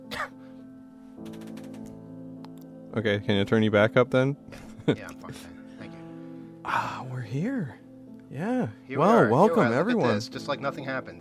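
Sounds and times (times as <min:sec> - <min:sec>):
person coughing: 0:00.0 - 0:00.5
speech: 0:02.9 - 0:05.6, 0:07.0 - 0:11.1.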